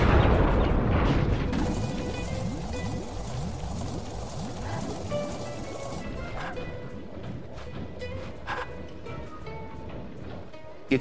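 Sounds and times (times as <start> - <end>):
demolition charge explosion blast: 0.0 - 7.6
crackling debris-like clatter: 0.0 - 10.5
heavy rumbling after the explosion: 0.0 - 11.0.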